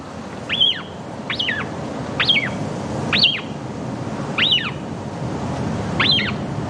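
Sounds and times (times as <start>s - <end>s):
Atlantic shearwater chick and parent calls at the nest: 0.5s - 3.6s, 4.3s - 5.0s, 5.9s - 6.5s.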